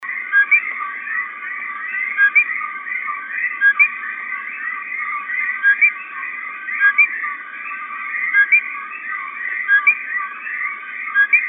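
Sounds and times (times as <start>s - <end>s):
E portoricensis coqui frog calling: 0.0s - 11.4s.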